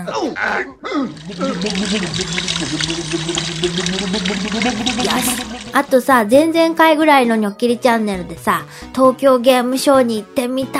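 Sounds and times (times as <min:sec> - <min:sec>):
speech: 0:00.0 - 0:10.7
voice imitating crashing ocean waves with sloshing vocal swooshes: 0:01.1 - 0:06.0.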